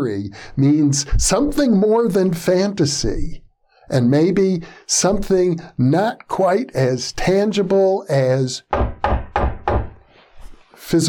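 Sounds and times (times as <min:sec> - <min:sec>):
speech: 0:00.0 - 0:08.9, 0:10.8 - 0:11.0
knocking on a wooden surface: 0:08.7 - 0:10.0.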